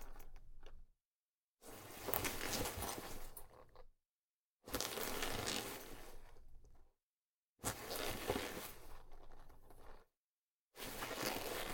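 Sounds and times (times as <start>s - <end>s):
leather jacket movement rustling: 1.7s - 3.4s, 4.7s - 6.2s, 7.6s - 9.4s, 10.8s - 11.7s.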